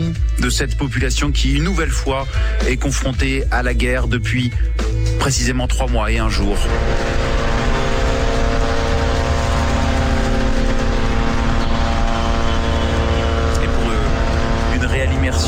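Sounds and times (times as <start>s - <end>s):
speech: 0.4s - 7.5s
Israeli drones buzzing overhead in Lebanon: 6.4s - 15.4s.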